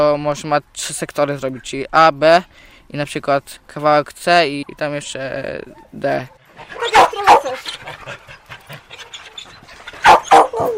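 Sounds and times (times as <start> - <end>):
speech: 0.0 - 8.2
dogs panting at an animal shelter: 4.5 - 10.7
dogs barking at an animal shelter: 5.8 - 10.7.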